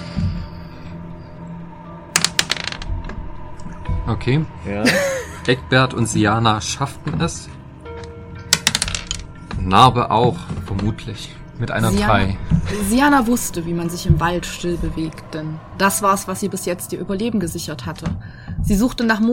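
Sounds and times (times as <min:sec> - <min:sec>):
faint low hum: 0:00.0 - 0:19.3
dice rolling on a hard surface: 0:02.2 - 0:02.9, 0:08.6 - 0:09.2
speech: 0:04.1 - 0:07.6, 0:09.7 - 0:19.3
laughter: 0:04.7 - 0:05.6.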